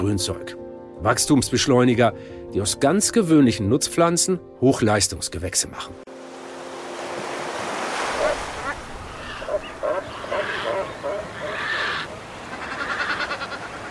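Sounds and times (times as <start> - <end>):
speech: 0.0 - 6.0
ocean surf washing against granite rocks of island coast: 6.2 - 13.9
crowded seabirds such as cormorants pelicans and boobies calling: 7.5 - 13.9.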